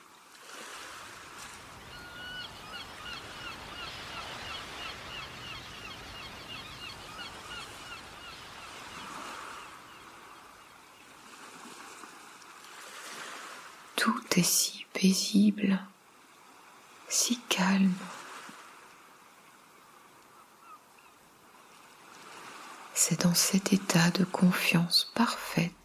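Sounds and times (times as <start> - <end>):
steady wash of ocean waves: 0.0 - 25.8
seagulls calling: 1.6 - 10.8, 20.3 - 21.2
speech: 14.0 - 15.9, 17.2 - 18.2, 23.3 - 25.8.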